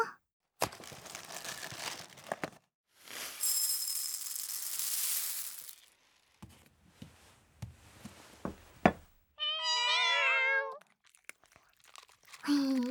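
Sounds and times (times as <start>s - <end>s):
loud crinkling like a food bag being handled: 0.7s - 2.6s, 11.2s - 12.9s
hungry cat meowing for food: 9.4s - 10.8s.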